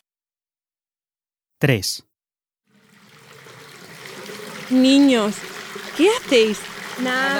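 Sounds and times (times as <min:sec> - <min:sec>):
speech: 0:01.6 - 0:02.1, 0:04.7 - 0:07.3
shower running water: 0:02.7 - 0:07.3.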